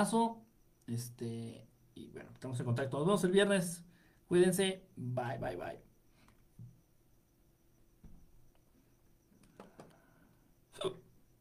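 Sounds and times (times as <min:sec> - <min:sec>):
speech: 0:00.0 - 0:05.9, 0:10.8 - 0:11.0
soft hiccups: 0:10.7 - 0:11.2.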